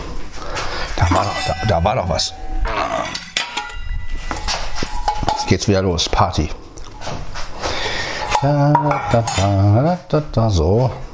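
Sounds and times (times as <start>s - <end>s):
dishes and cutlery clattering while preparing cat food: 1.0s - 5.8s, 8.0s - 9.6s
speech: 1.1s - 3.2s, 5.5s - 6.6s, 8.4s - 11.1s.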